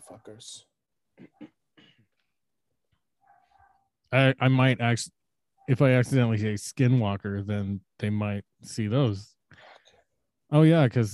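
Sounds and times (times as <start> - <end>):
speech: 0.2 - 1.3, 4.1 - 9.3, 10.5 - 11.1
dogs barking excitedly: 3.2 - 3.9.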